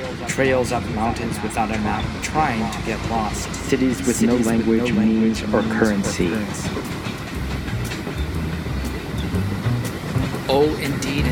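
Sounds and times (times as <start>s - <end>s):
train wheels clattering over rail joints: 0.0s - 11.3s
speech: 0.2s - 7.1s, 10.6s - 11.3s.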